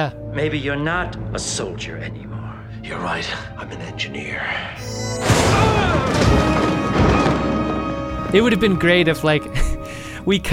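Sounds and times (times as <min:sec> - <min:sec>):
speech: 0:00.0 - 0:06.6, 0:08.3 - 0:10.5
improvised explosive detonating: 0:05.1 - 0:08.3
rumbling debris: 0:05.2 - 0:09.1.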